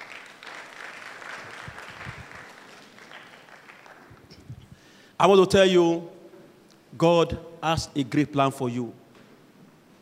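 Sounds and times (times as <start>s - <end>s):
crowd clapping: 0.0s - 4.6s
speech: 5.2s - 6.2s, 7.0s - 9.0s.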